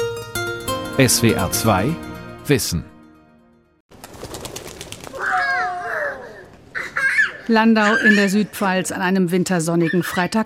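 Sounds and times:
speech: 1.0 - 2.9, 7.5 - 10.4
pigeons flapping wings on an open square: 3.9 - 5.7
excited high-pitched voices calling out: 5.2 - 8.6.

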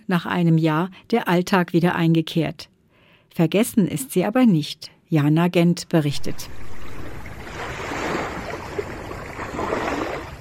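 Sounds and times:
speech: 0.1 - 2.7, 3.4 - 6.8
gentle ocean waves lapping on a beach: 6.1 - 10.3.

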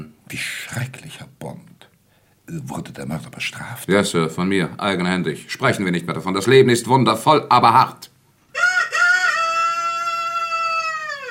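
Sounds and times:
speech: 0.3 - 1.7, 2.5 - 8.1
rooster crowing: 8.5 - 11.2.

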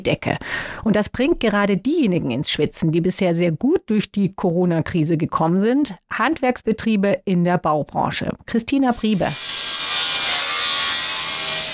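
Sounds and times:
speech: 0.0 - 9.5
saws cutting wooden panels in a carpentry workshop: 9.0 - 11.7.

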